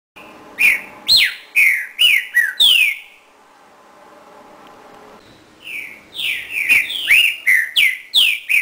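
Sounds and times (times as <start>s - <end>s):
Green-winged Saltator singing bright whistled slurs: 0.2s - 3.2s, 5.2s - 8.6s.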